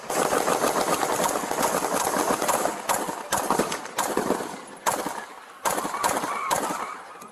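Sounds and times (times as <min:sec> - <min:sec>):
AK-47 rifle gunfire in rapid bursts: 0:00.0 - 0:07.0.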